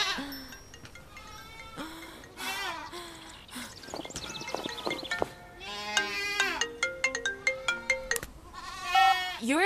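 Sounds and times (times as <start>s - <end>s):
bright electronic ringtone melody: 0.0s - 8.3s
several goats bleating: 1.1s - 3.0s, 5.6s - 6.6s, 7.4s - 9.4s
speech: 9.5s - 9.6s.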